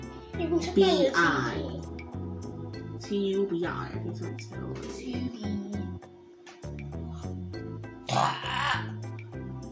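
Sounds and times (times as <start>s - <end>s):
speech: 0.4s - 1.7s, 3.1s - 6.0s
long loud gurgling burp: 8.0s - 9.1s.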